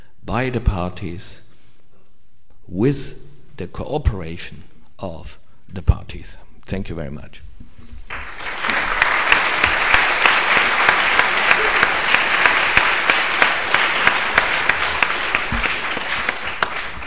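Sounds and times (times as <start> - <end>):
speech: 0.3 - 1.4, 2.7 - 7.5
spontaneous audience applause after a lecture on humanitarian law: 8.1 - 17.0.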